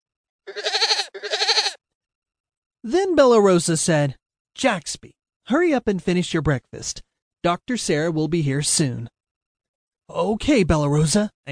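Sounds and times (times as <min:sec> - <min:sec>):
goat bleating: 0:00.5 - 0:01.8
speech: 0:02.8 - 0:09.2, 0:10.1 - 0:11.5.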